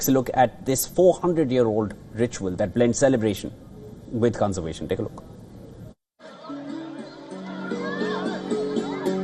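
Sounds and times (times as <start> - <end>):
speech: 0.0 - 5.3
outdoor crowd chatter: 5.7 - 9.2
children calling: 6.2 - 9.2.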